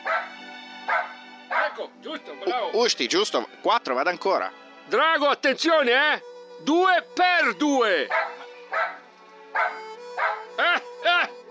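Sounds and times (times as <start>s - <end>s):
dog barking: 0.0s - 1.8s, 8.1s - 9.0s, 9.6s - 10.5s
speech: 2.0s - 8.3s.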